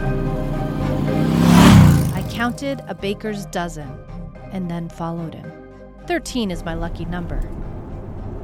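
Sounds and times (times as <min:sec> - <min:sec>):
motorcycle engine revving and accelerating away from a diner parking lot: 0:00.0 - 0:02.8
speech: 0:02.4 - 0:07.6.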